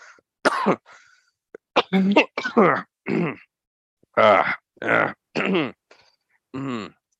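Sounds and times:
person coughing: 0:00.5 - 0:00.9, 0:01.8 - 0:03.5, 0:04.9 - 0:05.8
speech: 0:00.6 - 0:01.0, 0:01.9 - 0:03.5, 0:04.2 - 0:05.8, 0:06.5 - 0:07.0
person clearing throat: 0:01.8 - 0:03.5, 0:04.2 - 0:05.8, 0:06.6 - 0:07.0.

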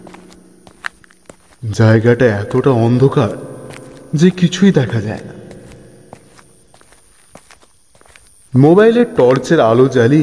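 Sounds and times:
footsteps climbing stairs in the dark: 0:00.0 - 0:01.8, 0:02.5 - 0:08.6
steady high hiss: 0:00.0 - 0:10.2
speech: 0:01.6 - 0:03.5, 0:04.1 - 0:05.4, 0:08.5 - 0:10.2.

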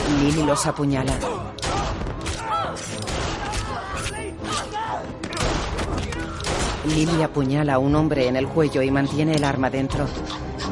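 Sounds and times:
people shouting: 0:00.1 - 0:06.6
speech: 0:00.2 - 0:01.6, 0:06.8 - 0:10.4
gunfire in a horror film scene: 0:01.2 - 0:07.2.

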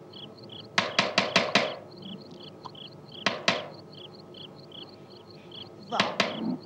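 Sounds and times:
crickets chirping: 0:00.0 - 0:06.6
knocking on the door of a house: 0:00.8 - 0:01.8, 0:03.2 - 0:03.8, 0:05.9 - 0:06.5.

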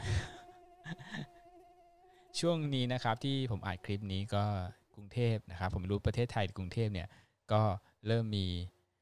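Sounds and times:
swarm of flying termites buzzing: 0:00.0 - 0:02.8
speech: 0:02.4 - 0:08.8.

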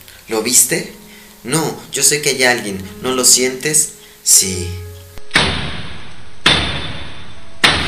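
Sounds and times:
speech: 0:00.3 - 0:04.9
fist pounding hard on a door: 0:05.3 - 0:07.8.

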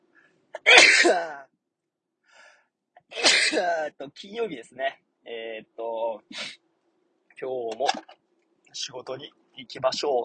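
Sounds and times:
sneeze: 0:00.6 - 0:01.4, 0:03.2 - 0:03.9
speech: 0:00.7 - 0:01.4, 0:03.1 - 0:06.5, 0:07.4 - 0:08.2, 0:08.8 - 0:10.2.

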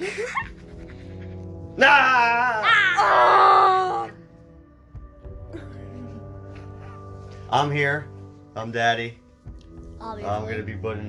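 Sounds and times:
speech: 0:01.8 - 0:03.4, 0:07.5 - 0:09.2, 0:10.0 - 0:11.0
person screaming: 0:02.0 - 0:04.2.

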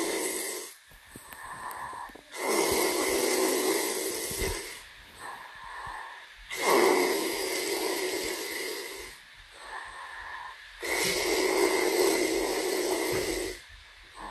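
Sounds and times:
loud rasping snoring: 0:00.0 - 0:00.8, 0:02.3 - 0:04.8, 0:06.5 - 0:09.2, 0:10.8 - 0:13.6
quiet breathy exhales: 0:00.0 - 0:14.3.

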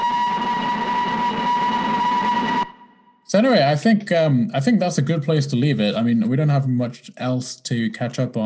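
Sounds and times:
sustained whistle-like train tone: 0:00.0 - 0:03.1
speech: 0:03.3 - 0:08.4.

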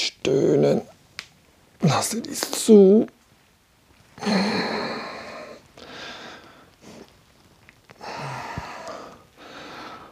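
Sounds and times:
speech: 0:00.2 - 0:00.9, 0:01.9 - 0:03.2, 0:04.2 - 0:04.8
person yawning while stretching: 0:04.2 - 0:06.1, 0:08.0 - 0:09.2
long breathy exhalations and airy sighs: 0:04.2 - 0:07.0, 0:08.0 - 0:10.1.

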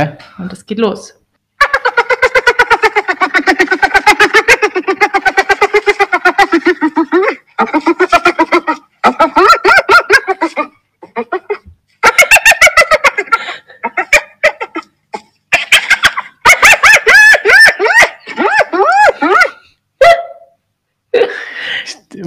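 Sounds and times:
speech: 0:00.0 - 0:01.2
hyena giggling call: 0:01.6 - 0:20.5.

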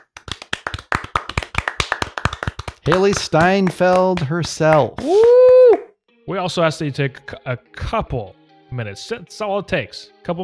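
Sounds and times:
hand clapping: 0:00.0 - 0:05.9
speech: 0:02.8 - 0:05.3, 0:06.3 - 0:10.4.

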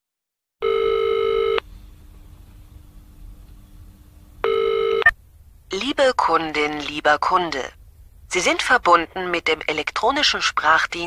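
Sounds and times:
telephone line ringing during a call to a computer company: 0:00.6 - 0:01.6, 0:04.4 - 0:05.1
speech: 0:05.7 - 0:11.0.

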